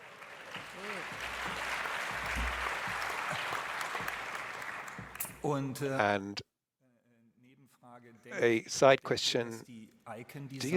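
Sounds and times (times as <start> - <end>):
faint voices or cheers: 0.0 - 5.0
crowd applause: 0.0 - 5.7
speech: 5.4 - 6.5, 8.3 - 10.7.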